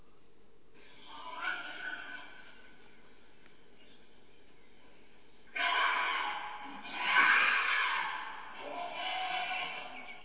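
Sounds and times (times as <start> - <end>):
male wild boars squealing and screaming while fighting: 0.9 - 2.6, 5.5 - 10.2.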